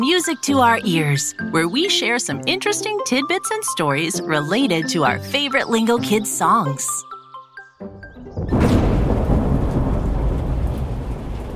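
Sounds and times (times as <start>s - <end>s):
speech: 0.0s - 7.1s
loud rumble of thunder: 8.4s - 11.5s
heavy pouring rain: 8.6s - 11.5s.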